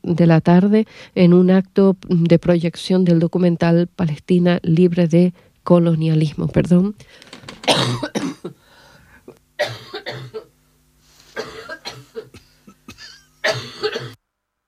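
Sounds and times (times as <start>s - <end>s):
faint steady hum: 0.0s - 14.6s
speech: 0.1s - 8.6s, 9.6s - 10.5s
person having a hacking coughing fit: 7.5s - 10.5s, 11.3s - 14.2s.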